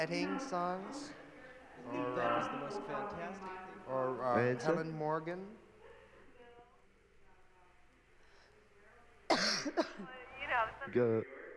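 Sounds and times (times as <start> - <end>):
speech: 0.0 - 1.2, 1.8 - 5.6, 9.6 - 11.4
rough voiced throat clearing: 9.3 - 10.1
woman coughing harshly: 9.3 - 10.1.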